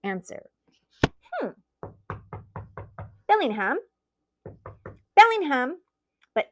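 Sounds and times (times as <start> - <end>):
speech: 0.0 - 0.6, 1.4 - 1.6, 3.3 - 3.9, 5.2 - 5.8, 6.4 - 6.5
knocking on a wooden door: 1.8 - 3.2, 4.4 - 5.1.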